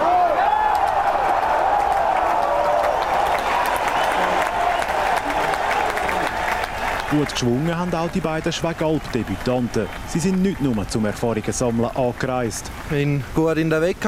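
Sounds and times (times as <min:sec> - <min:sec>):
excited shouts from spectators: 0:00.0 - 0:09.7
spectators cheering and clapping at outdoor wrestling: 0:00.0 - 0:13.0
whistles from spectators: 0:03.6 - 0:05.0
speech: 0:07.1 - 0:14.0.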